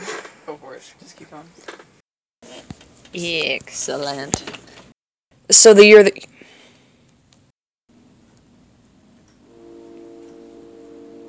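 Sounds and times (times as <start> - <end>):
speech: 0.8 - 1.9, 3.1 - 4.6, 5.5 - 6.3
train passing: 9.4 - 11.2.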